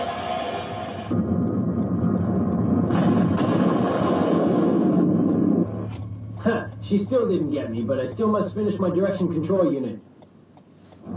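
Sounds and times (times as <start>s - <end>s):
science fiction weapon effect of pilot rays firing: 0.0s - 5.8s
speech: 6.9s - 10.1s.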